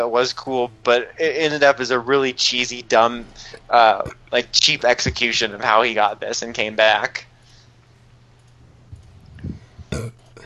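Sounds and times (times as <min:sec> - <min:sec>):
speech: 0:00.0 - 0:07.3, 0:10.0 - 0:10.2
person burping: 0:09.9 - 0:10.4
soft throaty grunts: 0:09.9 - 0:10.4.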